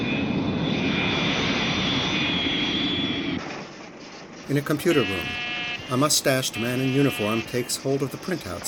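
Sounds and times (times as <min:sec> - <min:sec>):
U.S. Air Force jet aircraft taking off at an airport: 0:00.0 - 0:04.8
speech: 0:04.5 - 0:08.6.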